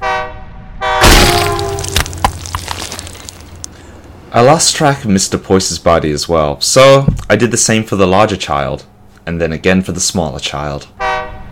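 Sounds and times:
train horn: 0.0s - 1.8s, 11.0s - 11.5s
speech: 4.4s - 11.0s.

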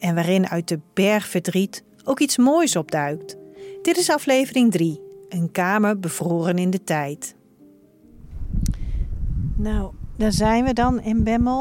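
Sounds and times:
speech: 0.0s - 7.4s, 9.6s - 11.5s
strong wind gusting outdoors in a floodplain: 8.1s - 11.5s.

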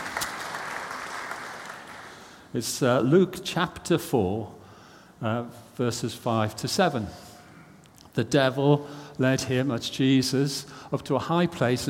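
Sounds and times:
audience applause: 0.0s - 2.2s
speech: 2.5s - 4.6s, 5.2s - 7.3s, 8.2s - 11.8s.

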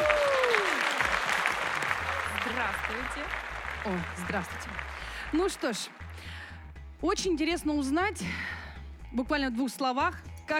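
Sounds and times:
crowd applauding: 0.0s - 6.3s
speech: 2.8s - 6.4s, 7.0s - 10.5s.

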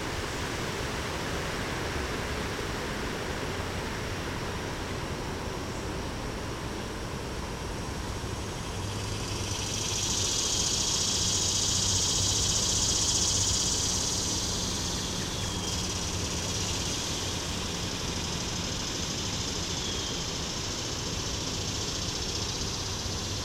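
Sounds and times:
wind about 10 mph: 0.0s - 23.4s
swamp cicada Neotibicen tibicen tibicen buzzing in shrubs: 5.6s - 23.4s.

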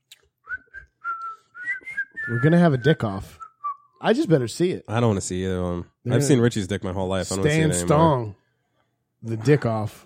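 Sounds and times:
person whistling a short tune: 0.4s - 4.0s
speech: 2.3s - 3.4s, 4.0s - 8.4s, 9.2s - 10.0s.

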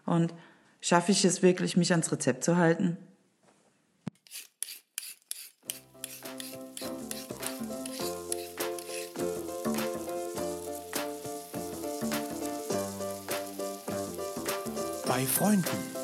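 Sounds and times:
speech: 0.1s - 3.1s, 15.2s - 15.9s
food sizzling in a hot frying pan: 4.3s - 16.0s
bright musical jingle: 15.0s - 16.0s.

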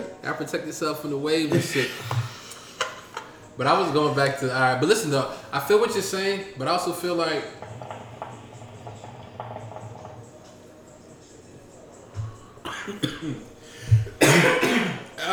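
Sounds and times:
speech: 0.3s - 2.4s, 3.6s - 7.6s
laughter: 1.4s - 10.1s
person coughing from smoking hookah: 12.6s - 15.3s.

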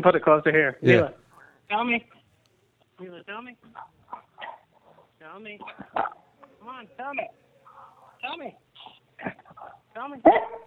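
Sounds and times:
speech: 0.0s - 2.2s, 3.0s - 4.2s, 5.2s - 7.4s, 8.2s - 8.6s, 9.2s - 10.6s
faint steady hum: 0.0s - 10.6s
dog barking and whining over a telephone line: 3.7s - 4.7s, 5.7s - 6.3s, 9.6s - 10.6s.

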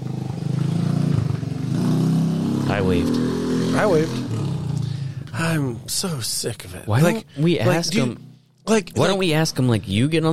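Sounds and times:
moped engine starting, idling roughly and revving: 0.0s - 5.2s
speech: 2.7s - 4.3s, 5.4s - 10.3s.

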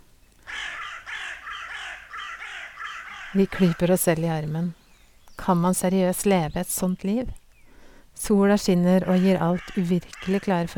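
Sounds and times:
crows cawing in a tree on a farm: 0.4s - 4.0s, 9.0s - 10.7s
speech: 3.3s - 4.8s, 5.4s - 7.4s, 8.2s - 10.7s.

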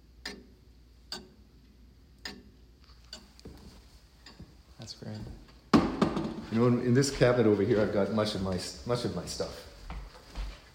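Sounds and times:
antique mechanical clock built in 1883 ticking: 0.0s - 5.7s
speech: 4.9s - 5.4s, 6.5s - 9.7s.

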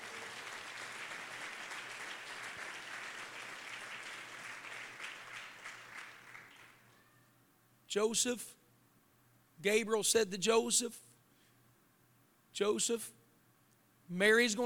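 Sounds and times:
audience clapping hands: 0.0s - 7.0s
speech: 7.9s - 8.6s, 9.6s - 11.1s, 12.6s - 13.2s, 14.1s - 14.6s.

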